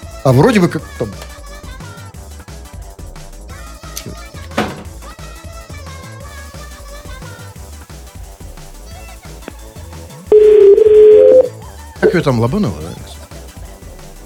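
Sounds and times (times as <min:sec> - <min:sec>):
speech: 0:00.2 - 0:01.3, 0:12.2 - 0:13.1
telephone dial tone while dialing a number: 0:10.3 - 0:11.5.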